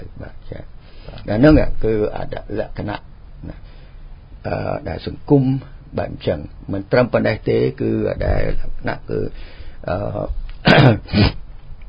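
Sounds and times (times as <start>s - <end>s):
speech: 1.3s - 3.6s, 4.4s - 11.4s
person clearing throat: 10.6s - 11.4s.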